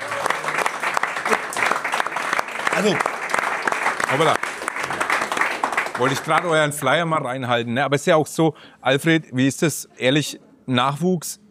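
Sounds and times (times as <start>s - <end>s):
enthusiastic applause of many hands clapping: 0.0s - 7.1s
speech: 2.8s - 3.1s, 4.1s - 4.5s, 6.0s - 11.4s.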